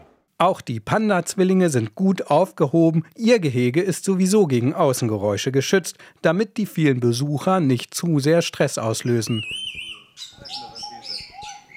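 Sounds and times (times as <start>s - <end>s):
speech: 0.4s - 10.7s
many birds chirping in a zoo bird house: 9.0s - 11.7s.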